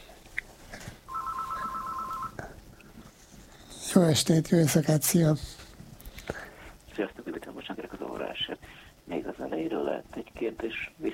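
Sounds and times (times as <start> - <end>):
faint hiss: 0.0 - 11.1
telephone ringing with a warbling electronic trill: 1.1 - 2.4
speech: 3.9 - 5.6.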